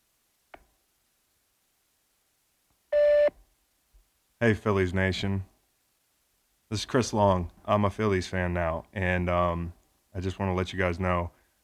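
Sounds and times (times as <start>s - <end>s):
electronic voicemail beep before leaving a message: 3.0s - 3.3s
speech: 4.4s - 5.5s, 6.7s - 11.4s.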